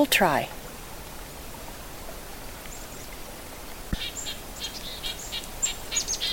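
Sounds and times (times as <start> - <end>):
speech: 0.0 - 0.6
black-capped chickadee flock calls: 4.0 - 6.3.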